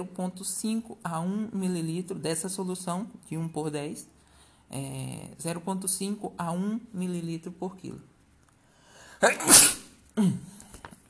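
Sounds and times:
speech: 0:00.0 - 0:08.1, 0:09.2 - 0:10.5
sneeze: 0:09.2 - 0:10.4.

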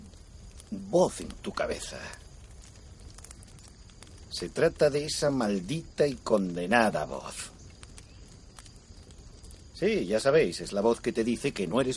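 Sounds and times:
bonfire crackling with pops and a rushing roar: 0:00.0 - 0:11.9
speech: 0:00.9 - 0:02.2, 0:04.4 - 0:07.5, 0:09.8 - 0:11.9.

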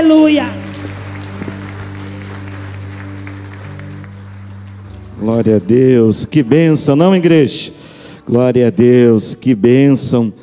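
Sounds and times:
speech: 0:00.0 - 0:00.6, 0:05.2 - 0:10.4
audience applauding: 0:00.0 - 0:06.4
sustained low keyboard chords: 0:00.0 - 0:10.4.

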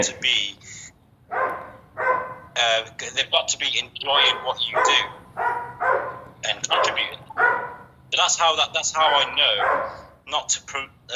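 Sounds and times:
speech: 0:00.0 - 0:00.6, 0:02.6 - 0:05.5, 0:06.4 - 0:11.1
puppy barking in short high-pitched yaps: 0:01.3 - 0:02.5, 0:04.2 - 0:07.9, 0:09.0 - 0:10.1.

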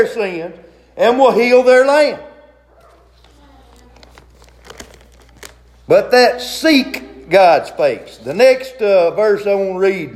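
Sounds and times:
speech: 0:00.0 - 0:02.3, 0:05.9 - 0:10.1
sheet of paper rustling and crinkling as it is pulled out: 0:02.7 - 0:05.8.

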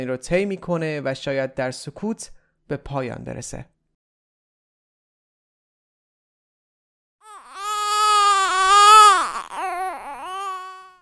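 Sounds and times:
speech: 0:00.0 - 0:03.8
newborn baby crying: 0:07.2 - 0:11.0.

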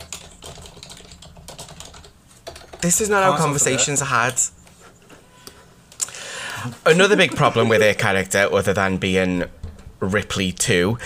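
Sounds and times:
rapid typing on a computer keyboard: 0:00.0 - 0:02.9
speech: 0:02.8 - 0:04.6, 0:06.6 - 0:11.0.

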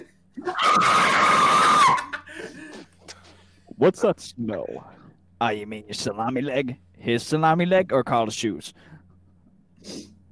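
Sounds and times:
person screaming: 0:00.4 - 0:02.2
speech: 0:03.8 - 0:09.0.

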